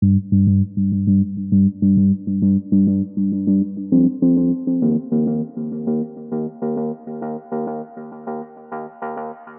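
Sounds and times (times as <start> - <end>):
building bass: 0.0 - 7.0.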